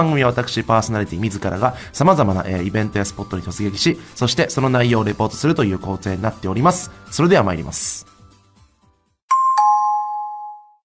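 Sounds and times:
speech: 0.0s - 8.1s
two-note doorbell-style ding-dong chime: 9.3s - 10.8s.

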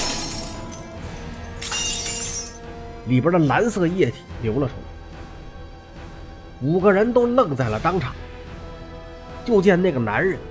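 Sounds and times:
glass container of blue liquid smashing against a table corner: 0.0s - 2.6s
scattered glass fragments tinkling: 0.0s - 2.6s
speech: 3.1s - 4.9s, 6.6s - 8.2s, 9.5s - 10.4s.

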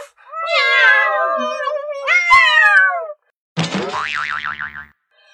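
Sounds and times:
cat stuck in a tree meowing: 0.4s - 3.2s
springy boing sound: 3.6s - 5.0s.

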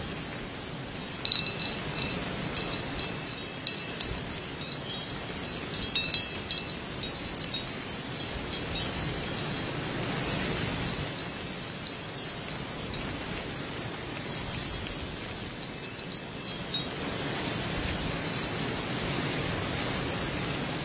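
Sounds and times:
wind chimes ringing in a bamboo grove: 0.0s - 20.7s.

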